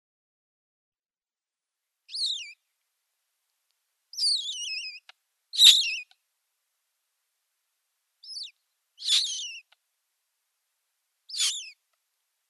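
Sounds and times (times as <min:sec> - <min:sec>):
Eurasian magpie nestlings squealing: 0:02.1 - 0:02.5, 0:04.2 - 0:06.1, 0:08.2 - 0:09.7, 0:11.3 - 0:11.8.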